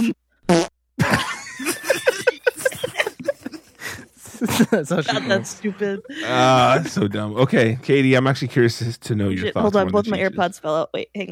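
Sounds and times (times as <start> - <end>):
long sputtering fart sound effect: 0.0 - 0.7
laughter: 1.0 - 7.8
speech: 4.7 - 11.3.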